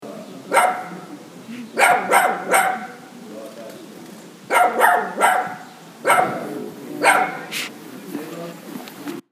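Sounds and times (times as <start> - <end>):
dog barking: 0.5 - 1.1, 1.8 - 3.1, 4.5 - 7.6.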